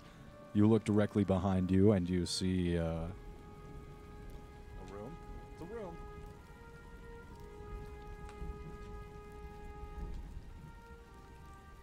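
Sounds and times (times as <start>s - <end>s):
heavy rain falling against glass windows: 0.0s - 11.8s
speech: 0.5s - 3.2s
faint drips and taps: 3.1s - 11.8s.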